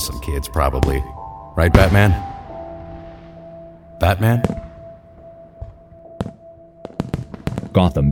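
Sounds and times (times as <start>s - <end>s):
fireworks popping and banging: 0.0s - 8.1s
speech: 0.2s - 2.3s, 4.0s - 4.6s, 7.8s - 8.1s.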